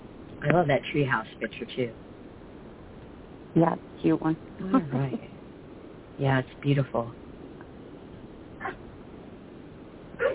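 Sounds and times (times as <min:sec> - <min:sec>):
low steady hum: 0:00.0 - 0:10.3
speech: 0:00.4 - 0:02.1, 0:03.6 - 0:05.3, 0:06.2 - 0:07.2
dog barking: 0:08.6 - 0:08.8.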